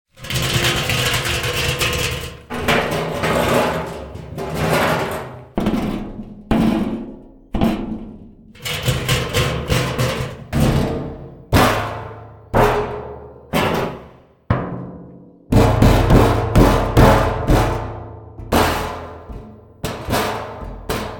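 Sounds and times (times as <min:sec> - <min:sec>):
impacts on metal oil drum: 0:00.1 - 0:21.1.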